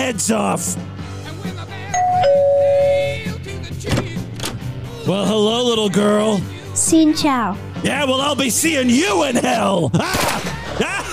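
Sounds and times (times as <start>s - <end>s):
speech: 0.0s - 1.7s, 5.1s - 10.9s
two-tone ding-dong doorbell chime: 2.0s - 3.3s
laughter: 9.0s - 11.1s.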